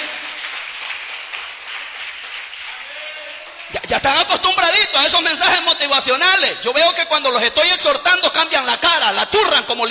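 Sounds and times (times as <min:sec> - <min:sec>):
audience applauding at a church service: 0:00.0 - 0:03.8
speech: 0:03.8 - 0:09.9.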